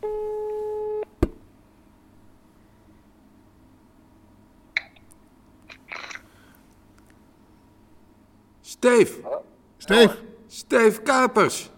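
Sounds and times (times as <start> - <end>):
telephone line tone as a call is placed: 0.0 - 1.1
speech: 8.8 - 11.7.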